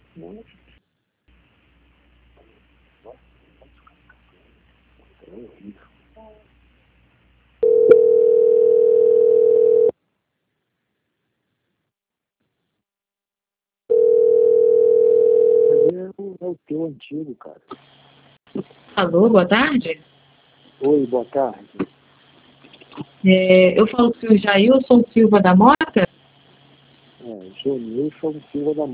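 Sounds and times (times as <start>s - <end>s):
speech: 0.2s - 0.7s, 3.0s - 3.3s, 5.3s - 6.5s, 16.5s - 20.1s, 20.8s - 21.9s, 23.0s - 26.1s, 27.5s - 28.9s
telephone tone while call is transferred: 7.6s - 9.9s, 13.9s - 15.9s.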